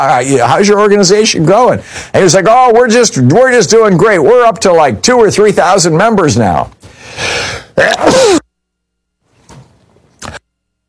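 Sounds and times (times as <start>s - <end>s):
speech: 0.0s - 8.4s
person sneezing: 7.3s - 8.5s.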